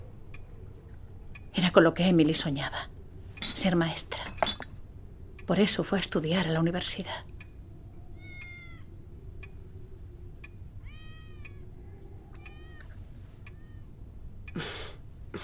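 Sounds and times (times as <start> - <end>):
steady low hum: 0.0 - 15.4
speech: 1.7 - 3.0, 3.6 - 4.5, 5.5 - 7.3
cats meowing in a house: 8.0 - 8.9, 10.8 - 14.0.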